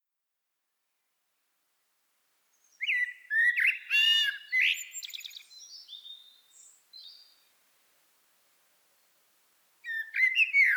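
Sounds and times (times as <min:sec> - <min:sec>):
common blackbird Turdus merula song: 0:02.5 - 0:07.5, 0:09.8 - 0:10.7.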